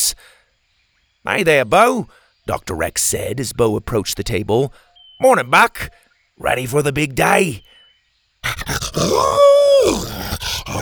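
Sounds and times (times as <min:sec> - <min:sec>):
speech: 0:01.2 - 0:07.7, 0:08.4 - 0:10.8
dog snuffly grunts and yips: 0:08.4 - 0:10.8
dog howling excitedly: 0:08.7 - 0:10.8.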